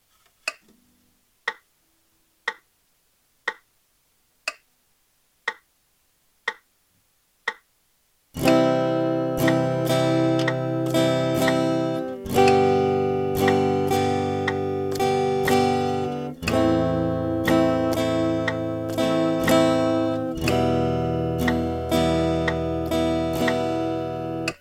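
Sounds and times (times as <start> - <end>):
8beat rhythm: 8.4 - 24.5.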